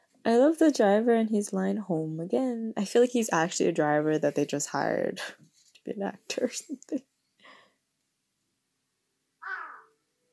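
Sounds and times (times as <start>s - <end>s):
speech: 0.2s - 7.1s
single harsh raspy crow caw: 9.4s - 10.0s.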